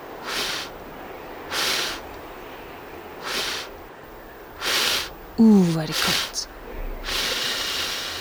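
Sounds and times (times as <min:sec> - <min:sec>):
person blowing air out: 0:00.2 - 0:00.8, 0:01.5 - 0:02.0, 0:03.2 - 0:03.7, 0:04.6 - 0:08.1
speech: 0:05.4 - 0:06.6.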